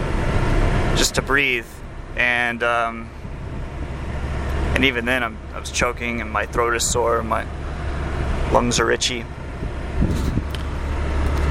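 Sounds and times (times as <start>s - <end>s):
car driving on a road: 0.0s - 11.4s
speech: 1.0s - 3.2s, 4.8s - 7.6s, 8.5s - 9.4s.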